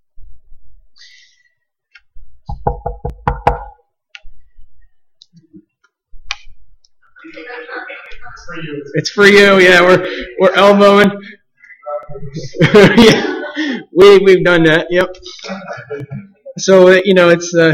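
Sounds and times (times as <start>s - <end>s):
knocking on a wooden bedroom door: 2.5s - 3.8s
laughter: 7.0s - 8.8s, 11.9s - 13.9s, 15.3s - 16.6s
speech: 8.5s - 11.4s, 12.2s - 13.3s, 14.0s - 17.7s.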